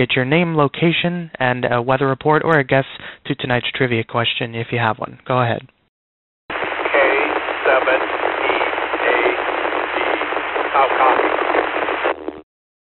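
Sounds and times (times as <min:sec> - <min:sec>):
speech: 0:00.0 - 0:05.8
weak garbled voice over an amateur radio channel: 0:06.5 - 0:12.2
steady crackling radio static: 0:06.5 - 0:12.5.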